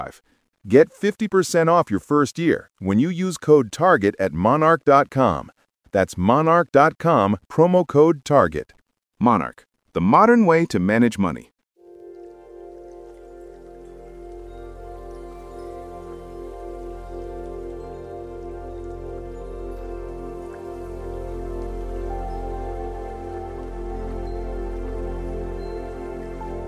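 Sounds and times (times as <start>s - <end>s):
speech: 0.0s - 11.5s
steady rain pattering on a hard surface: 11.8s - 26.6s
soft sustained tonal drone: 11.9s - 26.6s.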